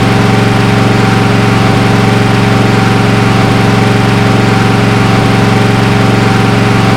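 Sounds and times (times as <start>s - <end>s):
simulated V8 vehicle engine at high revs: 0.0s - 6.9s.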